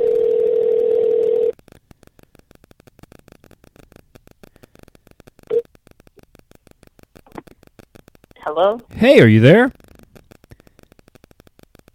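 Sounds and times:
telephone dial tone while redialing a call: 0.0 - 1.6
speech: 8.6 - 9.8.

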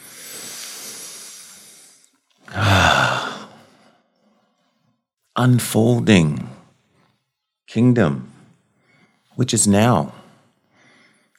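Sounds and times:
slow deep breathing: 0.0 - 5.1, 8.3 - 9.4, 10.1 - 11.3
speech: 5.4 - 6.5, 7.7 - 8.3, 9.4 - 10.2.

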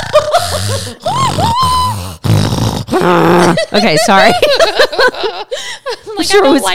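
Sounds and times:
laughter: 0.0 - 1.8, 3.2 - 6.6
person imitating the heavy heaving snort of a massive creature: 0.0 - 3.8
speech: 0.8 - 1.7, 3.0 - 6.7.

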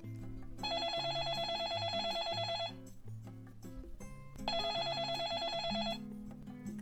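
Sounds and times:
soft music bed: 0.0 - 6.8
landline telephone ringing: 0.6 - 2.9, 4.5 - 6.1.

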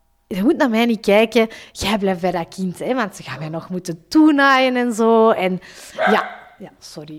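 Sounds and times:
speech: 0.3 - 7.1
dog barking at a bird: 6.0 - 6.6.

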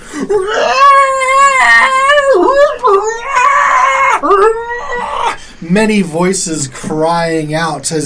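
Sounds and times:
speech: 0.2 - 0.8, 5.6 - 8.0
loud ear-piercing creature screech: 0.4 - 5.4.

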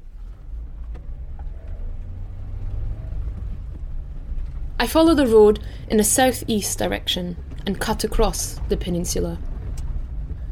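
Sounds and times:
car engine rumbling as the car is put in gear and driven off onto the road: 0.0 - 10.5
speech: 4.8 - 9.5.

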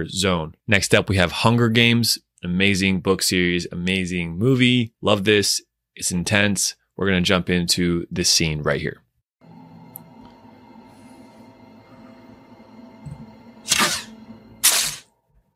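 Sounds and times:
speech: 0.0 - 9.0
quiet humming: 9.4 - 15.3.

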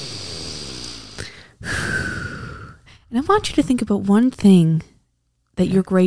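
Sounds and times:
deep breath in through the nose and out through the mouth: 0.0 - 3.2
speech: 3.1 - 4.9, 5.6 - 6.0.

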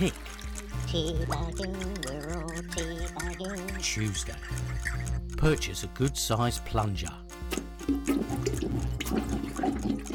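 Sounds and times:
speech: 0.0 - 0.2, 0.9 - 7.2
toilet flushing with water swirling down the bowl: 7.5 - 10.1.

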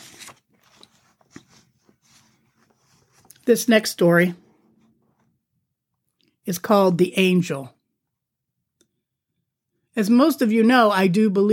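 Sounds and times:
book pages being turned: 0.0 - 3.5
speech: 3.5 - 4.4, 6.5 - 7.8, 10.0 - 11.5.

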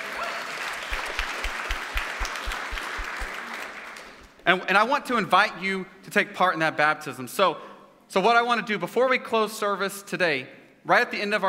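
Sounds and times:
audience clapping: 0.0 - 4.4
regular low thumping pulse: 1.7 - 3.3
speech: 4.5 - 11.4.

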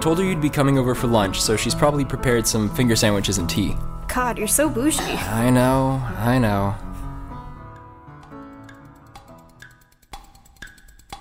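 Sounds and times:
speech: 0.0 - 6.8
several clocks ticking: 8.4 - 11.1.

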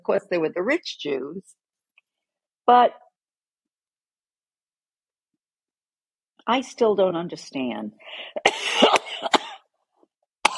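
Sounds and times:
speech: 0.0 - 1.6, 2.7 - 3.0, 6.4 - 9.4
person coughing harshly: 8.4 - 9.7.

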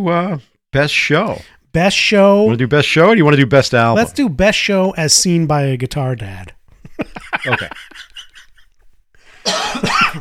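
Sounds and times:
speech: 0.0 - 8.1
laughter: 6.8 - 8.8
faint breathy sounds: 9.1 - 9.5
person coughing harshly: 9.4 - 10.1.

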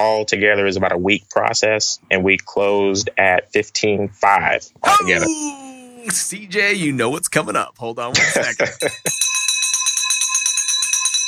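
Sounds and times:
speech: 0.0 - 9.4
laughter: 4.8 - 6.4, 8.1 - 9.1
victory bell ringing rapidly with metallic clanging: 8.2 - 11.2.

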